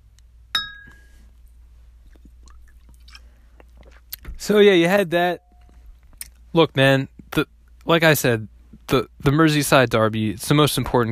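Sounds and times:
low steady hum: 0.0 - 11.1
beer glasses clinking in a toast: 0.6 - 1.2
speech: 4.5 - 5.4, 6.6 - 11.1.

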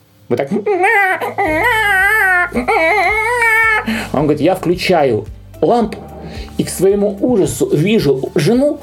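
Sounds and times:
speech: 0.3 - 3.1, 4.1 - 8.8
voice imitating a wife crying like a baby: 0.5 - 4.0.

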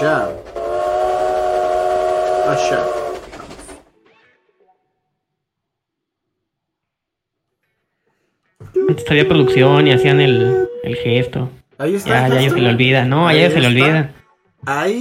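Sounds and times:
speech: 0.0 - 0.6, 2.5 - 3.0, 8.9 - 15.0
train whistle sounding a sustained chord: 0.0 - 3.7, 8.7 - 12.8
train rumbling: 0.0 - 4.0, 8.7 - 13.9.

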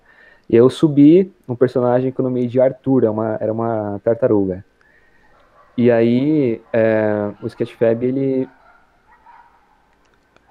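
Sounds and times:
low hiss: 0.0 - 10.4
speech: 0.5 - 4.7, 5.8 - 8.6
dogs barking faintly on the street: 4.9 - 10.4.

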